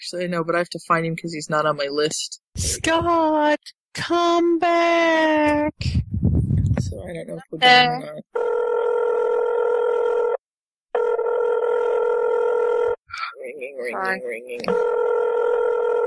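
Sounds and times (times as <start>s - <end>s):
speech: 0.1s - 6.0s, 6.8s - 8.9s, 13.4s - 15.2s
buzzy phone call ringing tone: 7.6s - 10.4s, 11.0s - 13.0s, 14.7s - 16.0s.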